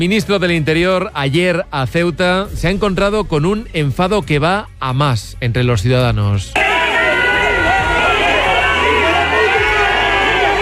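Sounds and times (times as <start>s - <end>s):
speech: 0.0s - 6.7s
large crowd booing and shouting insults angrily: 6.6s - 10.6s.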